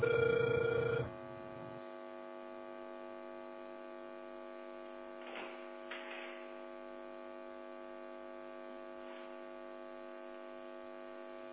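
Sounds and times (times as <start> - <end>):
telephone ringback tone: 0.0 - 1.2.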